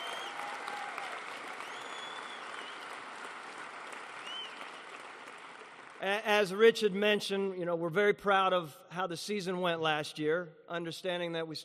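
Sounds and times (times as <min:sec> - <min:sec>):
faint whistles from an audience: 0:00.0 - 0:00.4, 0:01.6 - 0:02.9, 0:04.2 - 0:04.7
large audience applauding for a football head coach: 0:00.0 - 0:06.2
speech: 0:06.0 - 0:11.6.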